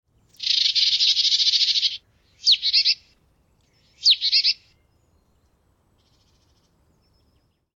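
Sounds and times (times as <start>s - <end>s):
marsh tit: 0.3s - 3.0s, 3.8s - 4.6s.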